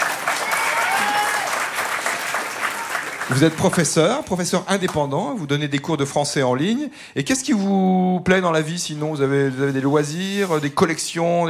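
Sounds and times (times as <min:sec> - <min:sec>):
studio audience applause: 0:00.0 - 0:04.2
speech: 0:03.3 - 0:11.4.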